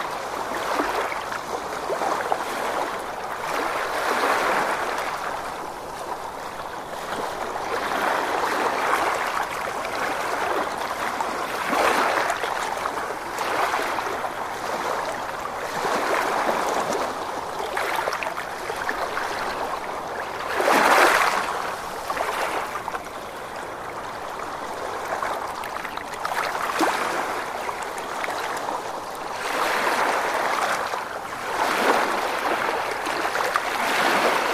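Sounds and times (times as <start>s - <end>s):
calm ocean waves: 0.0s - 34.5s.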